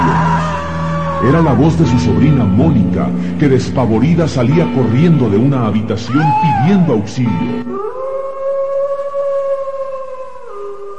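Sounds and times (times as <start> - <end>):
dog howling: 0.0 - 2.6, 6.0 - 7.0, 7.6 - 10.9
speech: 1.2 - 8.1.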